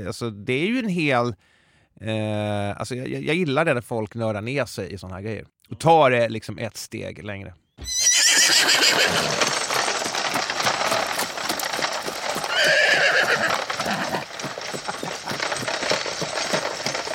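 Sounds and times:
speech: 0:00.0 - 0:08.0, 0:09.0 - 0:09.5
horse-drawn carriage hooves clip-clopping: 0:07.8 - 0:17.1
horses neighing and whinnying loudly: 0:07.8 - 0:17.1
horse-drawn carriage rolling with clatter: 0:09.2 - 0:12.7, 0:13.3 - 0:17.1.

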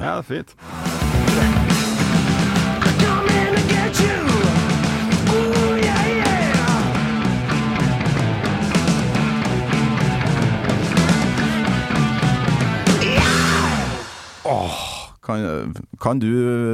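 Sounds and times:
speech: 0:00.0 - 0:01.6, 0:14.5 - 0:16.7
heavy metal track with pounding drums and distorted guitars: 0:00.6 - 0:14.8
piercing scream ending a metal song: 0:12.9 - 0:14.9.

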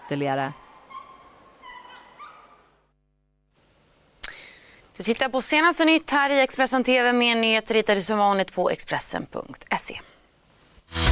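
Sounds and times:
dog barking: 0:00.0 - 0:02.8
speech: 0:00.1 - 0:00.6, 0:05.0 - 0:10.1.

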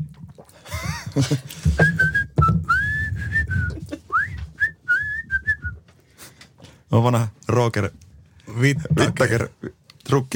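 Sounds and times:
laughter: 0:00.7 - 0:01.6, 0:03.7 - 0:04.1
speech: 0:01.2 - 0:02.0, 0:07.0 - 0:08.0, 0:08.6 - 0:10.3
person whistling a lilting melody: 0:01.8 - 0:05.8.

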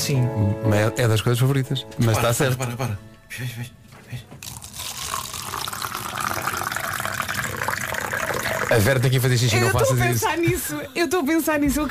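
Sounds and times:
speech: 0:00.0 - 0:04.5, 0:08.7 - 0:11.8
water running steadily from a tap: 0:04.4 - 0:09.7.

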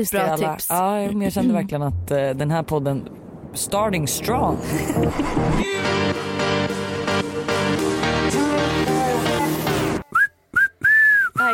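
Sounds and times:
speech: 0:00.0 - 0:06.4
dense burst of music: 0:04.0 - 0:10.0
laughter: 0:04.6 - 0:05.6
person whistling loudly: 0:10.0 - 0:11.5.

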